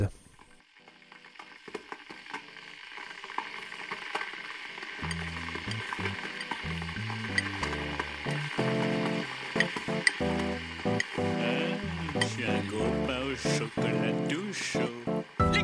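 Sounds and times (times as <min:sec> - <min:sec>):
electric kettle heating water: 0:00.6 - 0:15.6
low stepped tones: 0:05.0 - 0:14.1.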